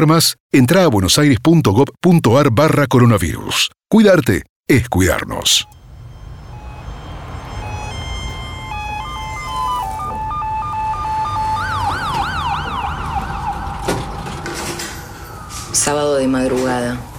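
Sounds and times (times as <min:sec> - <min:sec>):
speech: 0:00.0 - 0:05.8, 0:15.7 - 0:17.1
low rumble of street noise: 0:04.7 - 0:17.1
ambulance siren: 0:05.2 - 0:17.1.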